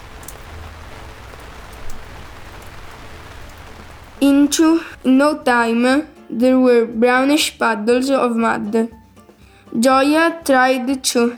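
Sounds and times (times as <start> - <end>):
steady rain pouring: 0.0 - 6.1
speech: 4.2 - 9.0, 9.7 - 11.3.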